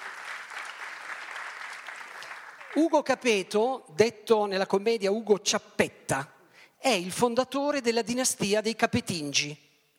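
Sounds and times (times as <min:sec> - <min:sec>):
theatre audience applause during a stage reading of a comedy: 0:00.0 - 0:02.9
speech: 0:02.8 - 0:09.6.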